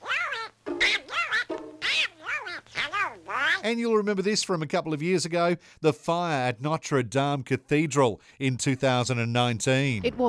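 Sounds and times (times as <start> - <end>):
cartoon duck voices quacking: 0.0 - 3.7
speech: 3.6 - 10.2.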